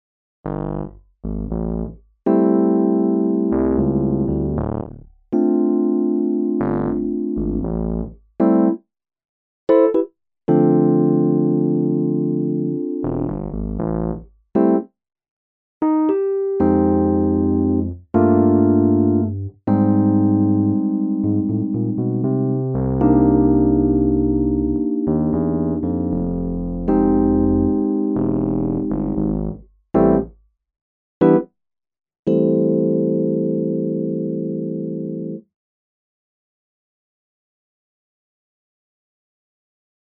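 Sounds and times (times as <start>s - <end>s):
Nord Piano 4 electric piano MK1 patch: 1.4s - 8.8s, 9.7s - 14.9s, 15.8s - 30.3s, 31.2s - 31.5s, 32.3s - 35.4s.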